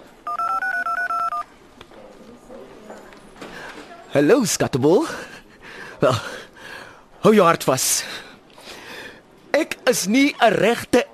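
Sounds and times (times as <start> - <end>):
telephone keypad touch-tones of a number being dialled: 0.2 - 1.5
speech: 4.2 - 5.3, 6.0 - 6.4, 7.2 - 8.2, 9.6 - 10.8.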